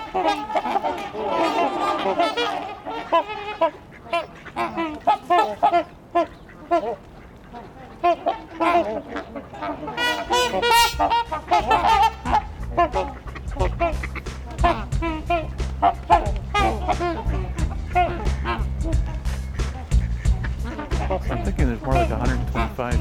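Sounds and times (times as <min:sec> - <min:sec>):
flock of trumpeter swans honking and quacking: 0:00.0 - 0:23.0
speech: 0:02.1 - 0:07.1, 0:08.0 - 0:13.2, 0:21.8 - 0:23.0
low rumbling background: 0:08.6 - 0:23.0.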